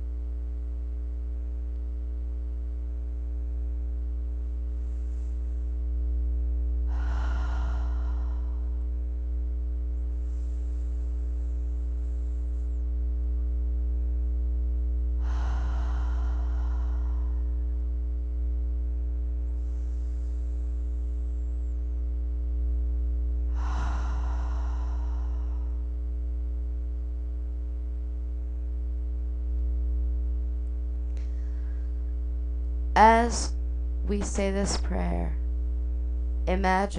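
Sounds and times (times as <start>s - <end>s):
steady low electrical hum: 0.0s - 36.9s
slow deep breaths: 6.8s - 12.9s, 15.1s - 18.0s, 19.4s - 21.4s, 23.4s - 26.2s, 31.1s - 32.2s
speech: 33.0s - 35.4s, 36.5s - 36.9s.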